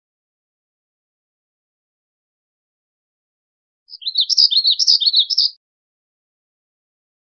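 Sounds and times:
black-throated gray warbler song: 0:03.9 - 0:05.6.

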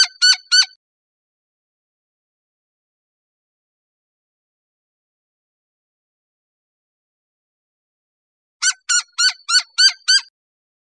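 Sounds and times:
Gila woodpecker harsh nasal calls: 0:00.0 - 0:00.7, 0:08.6 - 0:10.3.

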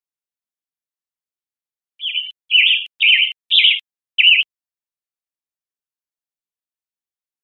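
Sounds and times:
Western tanager giving short burry rough notes: 0:02.0 - 0:04.5.

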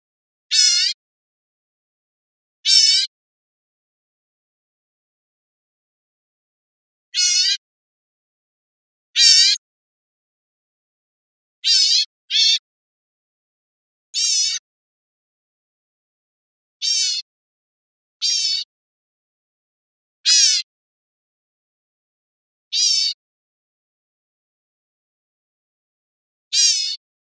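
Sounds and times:
harsh buzzy bird calls: 0:00.5 - 0:01.0, 0:02.6 - 0:03.1, 0:07.2 - 0:07.6, 0:09.2 - 0:09.6, 0:11.6 - 0:12.6, 0:14.2 - 0:14.6, 0:16.8 - 0:17.3, 0:18.2 - 0:18.7, 0:20.3 - 0:20.7, 0:22.7 - 0:23.2, 0:26.5 - 0:27.0.

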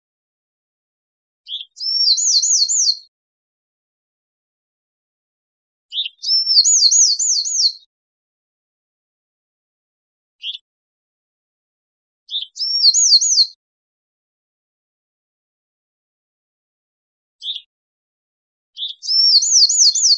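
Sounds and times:
Bewick's wren singing sharp note and wavering trill: 0:01.5 - 0:03.1, 0:05.9 - 0:07.9, 0:10.4 - 0:10.7, 0:12.3 - 0:13.6, 0:17.4 - 0:17.7, 0:18.8 - 0:20.1.

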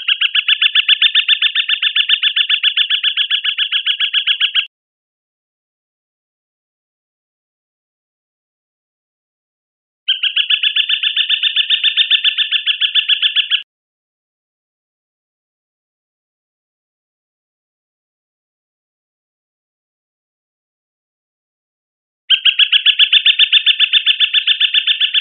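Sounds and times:
flycatcher chattering in Costa Rica: 0:00.0 - 0:04.7, 0:10.1 - 0:13.6, 0:22.3 - 0:25.1.

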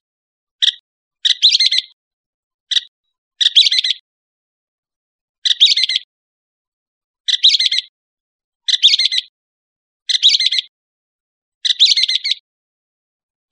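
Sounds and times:
northern mockingbird harsh calls: 0:00.6 - 0:01.9, 0:02.7 - 0:04.0, 0:05.5 - 0:06.1, 0:07.3 - 0:07.9, 0:08.7 - 0:09.3, 0:10.1 - 0:10.7, 0:11.7 - 0:12.4.

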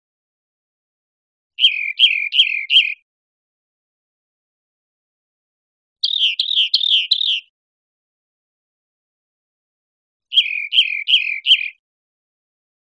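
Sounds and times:
rock wren song with repeated buzzy notes: 0:01.6 - 0:03.0, 0:06.0 - 0:07.5, 0:10.3 - 0:11.8.

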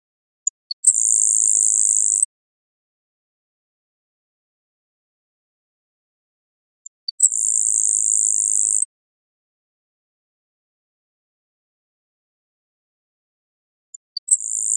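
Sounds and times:
grasshopper sparrow singing: 0:00.6 - 0:02.3, 0:06.9 - 0:08.9, 0:14.0 - 0:14.7.

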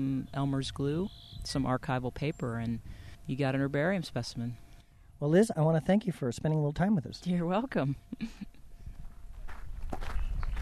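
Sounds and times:
speech: 0:00.0 - 0:04.6, 0:05.2 - 0:08.6
footsteps of walkers crunching on a hiking trail: 0:08.9 - 0:10.6.

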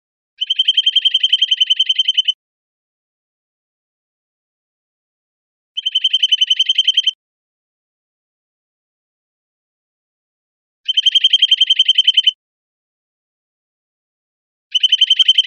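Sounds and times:
bird trill in Costa Rica: 0:00.4 - 0:02.4, 0:05.8 - 0:07.2, 0:10.9 - 0:12.4, 0:14.7 - 0:15.4.

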